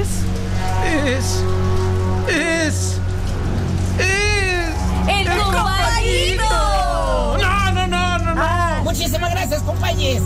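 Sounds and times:
heavy rain pouring: 0:00.0 - 0:08.2
voices calling out: 0:00.0 - 0:09.8
low constant hum: 0:00.0 - 0:10.2.

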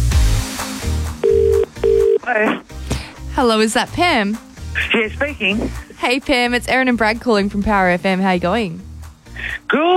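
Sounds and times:
outgoing phone call ringback tone: 0:01.2 - 0:02.2
speech: 0:02.3 - 0:02.8, 0:03.4 - 0:09.9.

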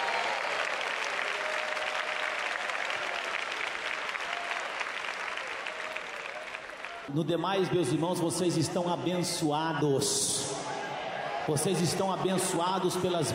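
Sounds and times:
audience clapping hands: 0:00.0 - 0:07.2
speech: 0:07.1 - 0:10.4, 0:11.4 - 0:13.3.

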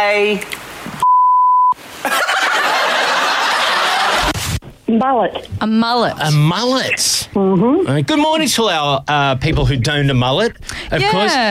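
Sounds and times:
speech: 0:00.0 - 0:00.6, 0:04.9 - 0:11.4
censor bleep pure tone: 0:01.0 - 0:01.8
laughter: 0:02.0 - 0:04.4.

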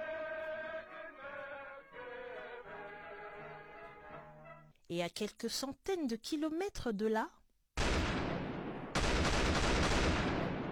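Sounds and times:
speech: 0:04.9 - 0:07.4
gunfire and strikes in Ethiopia: 0:07.8 - 0:10.6.

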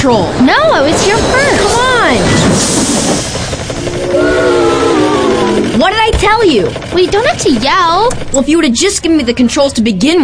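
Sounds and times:
speech: 0:00.0 - 0:03.2, 0:05.9 - 0:10.2
rhythmic hissing chuffs of a toy train: 0:00.9 - 0:09.0
toy train steam whistle: 0:03.9 - 0:05.8.

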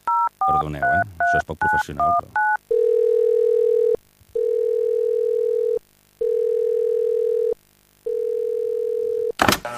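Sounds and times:
speech: 0:00.5 - 0:02.5
telephone line tones while a call is being placed: 0:02.0 - 0:09.4.

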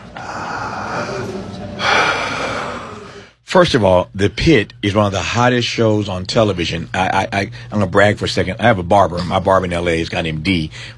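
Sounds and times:
deep breath: 0:00.0 - 0:03.4, 0:10.7 - 0:10.9
speech: 0:03.5 - 0:10.9.

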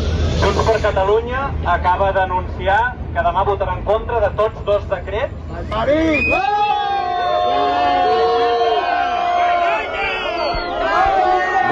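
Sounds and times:
speech: 0:00.4 - 0:08.2
large crowd booing and shouting shame in unison: 0:06.2 - 0:11.7
crowd chanting rising and falling cries: 0:07.7 - 0:11.7.

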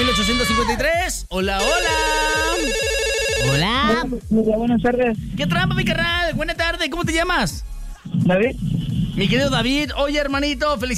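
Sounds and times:
speech: 0:00.6 - 0:01.9, 0:03.5 - 0:10.9
electronic ringing of a telephone line for an incoming call: 0:01.6 - 0:04.0.

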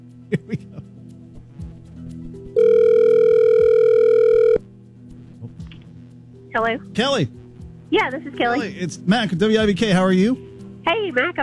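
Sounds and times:
laughter: 0:00.3 - 0:00.9
buzzing telephone ring tone on the line: 0:02.6 - 0:04.6
speech: 0:06.6 - 0:11.4.

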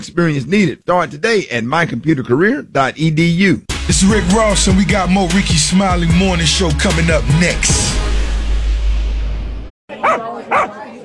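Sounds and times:
speech: 0:00.0 - 0:08.0
low rumbling noise: 0:07.2 - 0:09.7
dog barking: 0:09.9 - 0:10.8.

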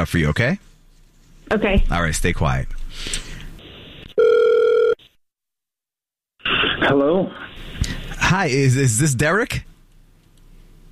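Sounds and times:
speech: 0:00.0 - 0:00.7, 0:01.5 - 0:03.3, 0:06.8 - 0:07.7, 0:08.3 - 0:09.7
outgoing phone ringback tone: 0:04.2 - 0:05.0.

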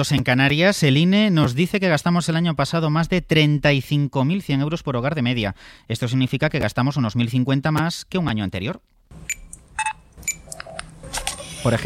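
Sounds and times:
speech: 0:00.0 - 0:09.9, 0:11.6 - 0:11.8
electronic beeps at a supermarket checkout: 0:09.3 - 0:10.6.

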